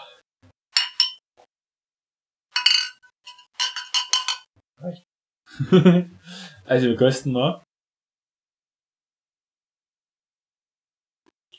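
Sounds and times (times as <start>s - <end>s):
glasses clinking in a toast: 0.8s - 1.2s, 2.6s - 4.4s
speech: 4.8s - 7.7s
laughter: 5.5s - 6.6s.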